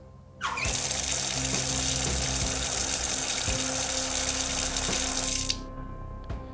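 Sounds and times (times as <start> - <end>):
water running from a tap into a sink: 0.4 - 5.6.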